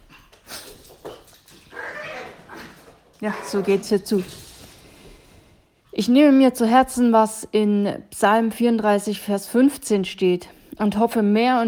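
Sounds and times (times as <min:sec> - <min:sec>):
dog whiny yelp: 0:01.7 - 0:03.6
speech: 0:03.2 - 0:04.4, 0:06.0 - 0:11.6.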